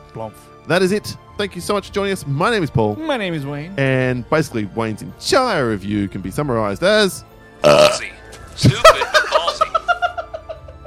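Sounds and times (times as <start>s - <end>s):
speech: 0.2s - 9.1s
loud drawn-out belch: 7.6s - 8.2s
low croak: 7.6s - 8.2s
rhythmic chuckling laughter: 8.7s - 10.8s.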